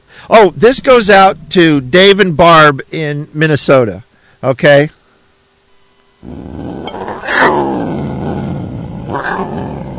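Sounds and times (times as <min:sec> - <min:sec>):
speech: 0:00.3 - 0:05.0, 0:06.2 - 0:07.8
mountain lion roaring: 0:06.2 - 0:09.9.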